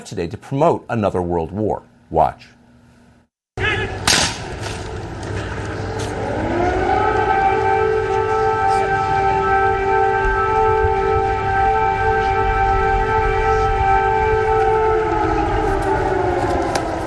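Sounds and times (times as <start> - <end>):
speech: 0.0 - 2.6
air raid siren wailing outdoors: 3.6 - 17.0.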